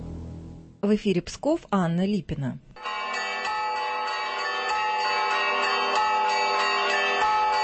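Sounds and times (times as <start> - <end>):
speech: 0.9 - 2.7
bells of the Church of the Holy Prince Alexander Nevsky in Pskov Russia pealing: 2.8 - 7.6.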